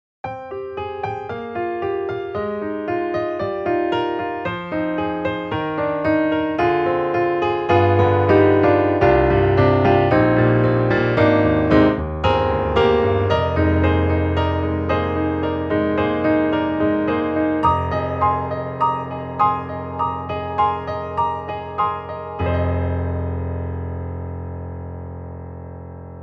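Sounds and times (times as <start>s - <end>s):
studio grand piano played hard: 0.2s - 26.2s.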